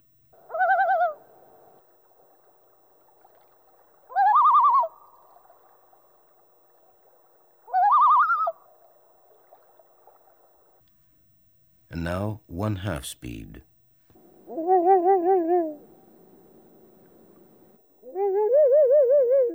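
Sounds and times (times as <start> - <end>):
loon tremolo calls at normal speed: 0.4 - 5.5, 7.7 - 8.7, 14.4 - 19.5
speech: 12.0 - 13.7.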